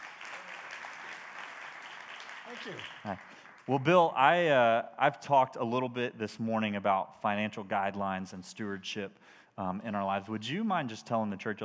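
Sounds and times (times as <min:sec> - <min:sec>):
audience applauding: 0:00.0 - 0:04.0
speech: 0:02.5 - 0:11.6.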